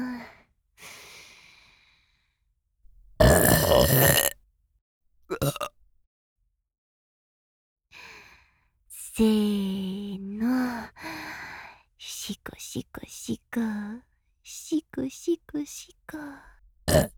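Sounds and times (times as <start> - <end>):
loud drawn-out burp: 3.2 - 4.4, 5.3 - 5.8, 16.9 - 17.1
speech: 3.3 - 4.3, 9.2 - 9.5, 12.7 - 14.1, 15.0 - 17.1.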